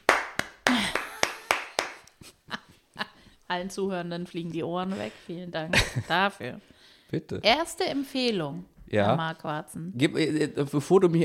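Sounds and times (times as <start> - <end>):
one person clapping loudly: 0.0 - 2.2
speech: 2.2 - 2.6, 3.5 - 11.2.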